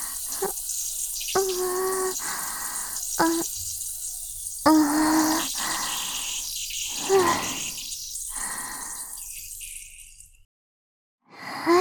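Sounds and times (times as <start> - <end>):
urine stream splashing: 0.0 - 8.9.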